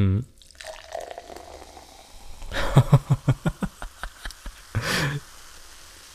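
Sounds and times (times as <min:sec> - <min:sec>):
speech: 0:00.0 - 0:00.3
drink pouring into a glass with gurgling stream: 0:00.3 - 0:04.7
laughter: 0:02.5 - 0:05.2.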